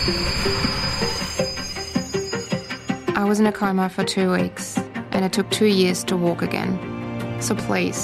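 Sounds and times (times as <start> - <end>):
speech: 0.0 - 1.1, 3.3 - 8.0
train wheels squealing: 0.0 - 3.0
train arriving at station platform rumbling: 0.0 - 3.1.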